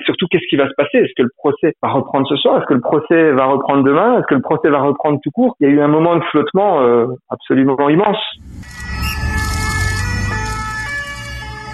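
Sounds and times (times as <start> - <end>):
speech: 0.2 - 9.3
low ambulance engine rumble: 8.4 - 11.7
two-tone ambulance siren wailing: 8.4 - 11.7.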